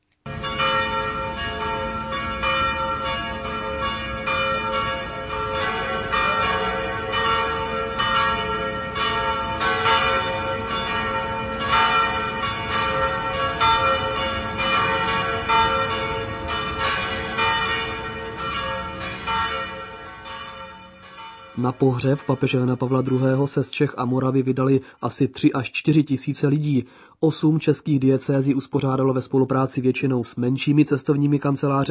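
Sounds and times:
several church bells pealing together: 0.3 - 25.0
speech: 21.6 - 31.8.

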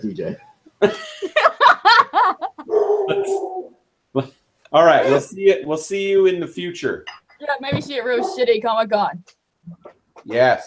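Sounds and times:
speech: 0.0 - 1.2, 4.2 - 9.4, 10.3 - 10.6
laughter: 0.8 - 3.4
dog barking: 2.7 - 3.7.

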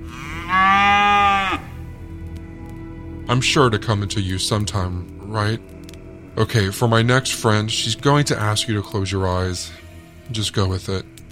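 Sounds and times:
cow mooing: 0.0 - 1.8
speech: 3.3 - 5.8, 6.4 - 11.1.

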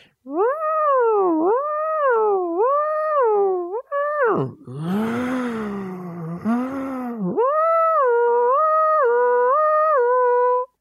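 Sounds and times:
voice imitating a siren: 0.3 - 10.7.

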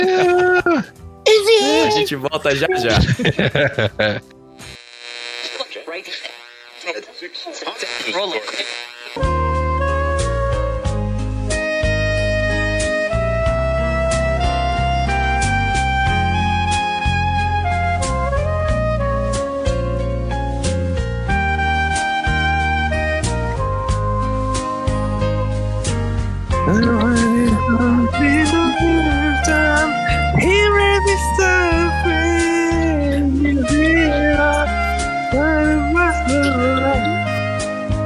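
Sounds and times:
laughter: 0.0 - 0.9, 1.7 - 4.3, 26.7 - 29.0
romantic song played on the radio: 0.0 - 4.3, 9.2 - 38.0
speech: 2.0 - 4.4, 7.2 - 9.3.

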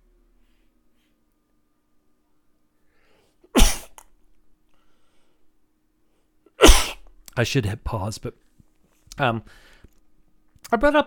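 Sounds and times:
person sneezing: 3.5 - 4.1, 6.5 - 7.1
speech: 7.4 - 8.4, 9.2 - 9.7, 10.7 - 11.0.

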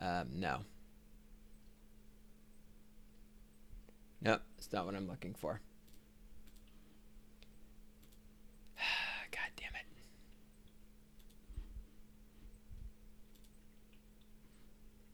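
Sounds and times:
speech: 0.0 - 0.8, 4.2 - 5.7
low steady hum: 0.0 - 15.1
computer keyboard typing: 5.8 - 6.7, 10.6 - 11.4, 13.3 - 14.0.

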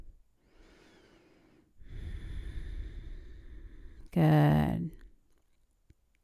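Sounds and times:
deep breathing during a seated yoga stretch: 0.0 - 4.2
speech: 4.2 - 4.8.

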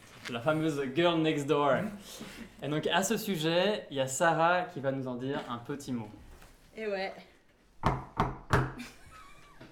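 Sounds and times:
faint noise: 0.0 - 9.7
speech: 0.3 - 6.2, 6.8 - 8.0
knocking on a door: 7.8 - 8.8.

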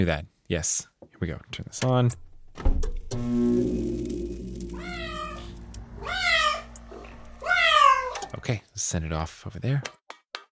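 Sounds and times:
speech: 0.0 - 4.2, 8.4 - 10.0
steady low electrical hum: 3.0 - 8.8
kitten meowing: 4.8 - 8.3.

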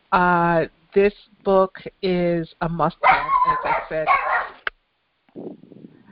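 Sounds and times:
speech: 0.1 - 4.4
dog barking: 3.0 - 4.6.

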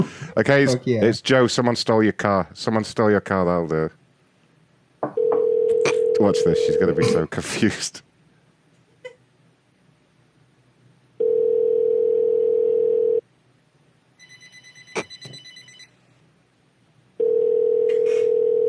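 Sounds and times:
speech: 0.0 - 4.0, 6.2 - 8.1
telephone ringing tone during an unanswered call: 5.2 - 6.9, 11.2 - 13.2, 14.2 - 16.0, 17.2 - 18.6.

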